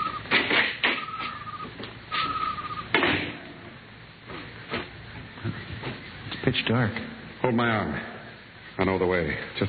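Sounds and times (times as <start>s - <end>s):
small side door of a silo creaking: 0.0s - 3.6s
speech: 6.6s - 8.1s, 8.8s - 9.6s.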